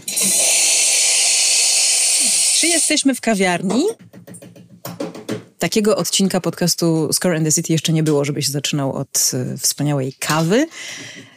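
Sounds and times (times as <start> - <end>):
speech: 0.0 - 0.5, 2.6 - 4.1, 5.6 - 11.3
coffee machine steam wand hissing steam: 0.0 - 3.0.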